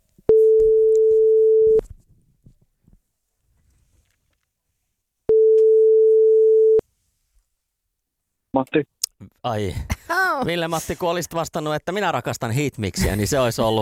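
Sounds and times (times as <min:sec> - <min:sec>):
telephone ringback tone while calling a listener's number: 0:00.3 - 0:01.8, 0:05.3 - 0:06.8
speech: 0:08.7 - 0:13.8.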